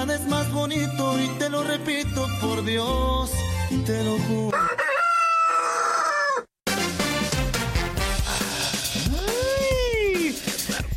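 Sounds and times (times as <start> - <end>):
speech: 0.1 - 4.8
rooster crowing: 4.5 - 6.5
loud busy music: 6.7 - 10.9.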